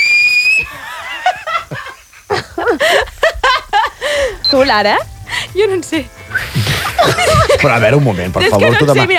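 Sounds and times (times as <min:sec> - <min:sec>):
loud shrill two-finger whistle: 0:00.0 - 0:00.7, 0:06.3 - 0:06.6
excited voices: 0:00.0 - 0:09.1
people laughing: 0:00.6 - 0:04.4, 0:06.3 - 0:09.1
speech: 0:04.5 - 0:09.1.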